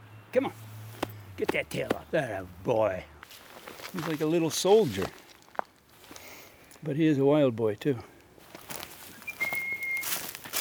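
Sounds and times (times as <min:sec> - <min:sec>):
speech: 0:00.4 - 0:00.7, 0:01.4 - 0:03.1, 0:03.9 - 0:05.2, 0:06.8 - 0:08.1
person whistling to call cats: 0:09.2 - 0:10.1.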